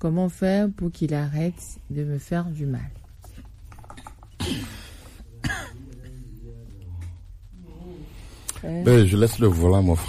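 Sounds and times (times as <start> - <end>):
speech: 0.0 - 3.0, 8.6 - 10.0
man clearing throat: 4.3 - 6.4.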